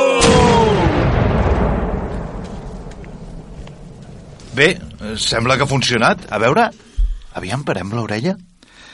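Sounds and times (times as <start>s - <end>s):
cannon blast: 0.2s - 6.3s
speech: 4.6s - 8.5s.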